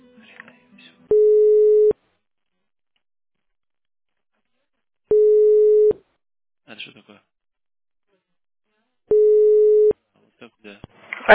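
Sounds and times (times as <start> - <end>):
telephone line tone while a call is transferred: 1.1 - 1.9, 5.1 - 6.0, 9.1 - 9.9.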